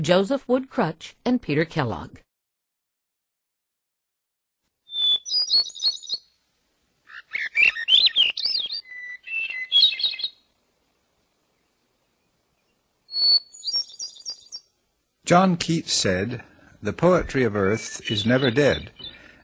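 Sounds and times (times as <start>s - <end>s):
speech: 0.0s - 2.2s, 15.3s - 19.0s
bird singing bright high-pitched phrases of warbling notes and trills: 4.9s - 6.3s, 7.1s - 10.5s, 13.1s - 14.7s, 17.8s - 19.3s.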